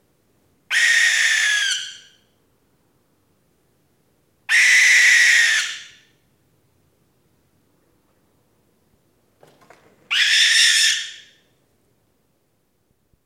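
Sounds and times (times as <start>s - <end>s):
barn owl screeching in an old silo at night: 0.7s - 2.2s, 4.5s - 6.1s, 10.1s - 11.4s.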